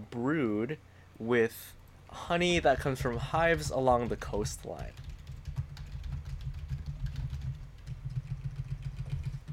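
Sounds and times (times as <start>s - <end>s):
low constant hum: 0.0s - 9.5s
speech: 0.2s - 5.0s
typing on a computer keyboard: 2.5s - 9.5s.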